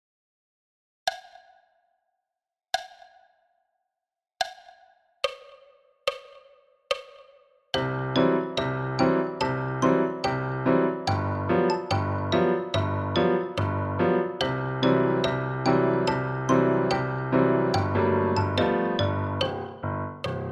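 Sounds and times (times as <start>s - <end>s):
piano at 72 bpm: 7.8s - 20.5s
xylophone at 72 bpm: 7.8s - 20.5s.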